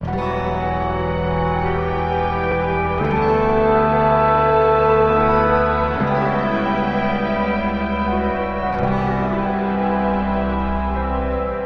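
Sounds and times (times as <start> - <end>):
guitar in a sad loop: 0.0 - 11.6
strings in a sad loop: 0.0 - 11.6.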